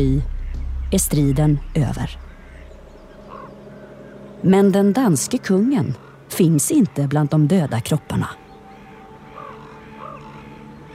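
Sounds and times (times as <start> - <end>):
speech: 0.0 - 0.3, 0.9 - 2.2, 4.4 - 8.4
faint drone: 0.0 - 10.9
raven cawing: 1.9 - 4.5, 5.2 - 10.9.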